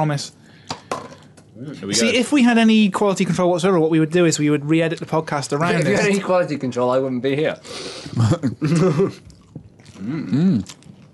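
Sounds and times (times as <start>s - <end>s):
speech: 0.0s - 0.5s, 1.6s - 9.3s, 10.0s - 10.8s
wet chewing of gum with smacking mouth sounds: 9.2s - 11.1s.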